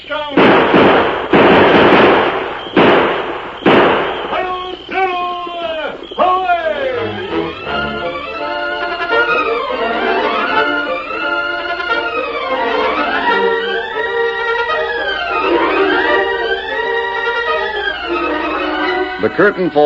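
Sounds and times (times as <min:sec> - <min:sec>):
gunshots: 0:00.2 - 0:06.2
quiet tonal sounds: 0:04.1 - 0:19.8
speech: 0:19.4 - 0:19.8.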